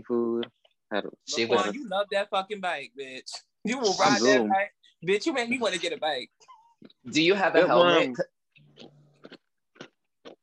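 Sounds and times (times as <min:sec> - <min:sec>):
speech: 0:00.0 - 0:09.0
crunchy food being chewed: 0:08.5 - 0:10.4.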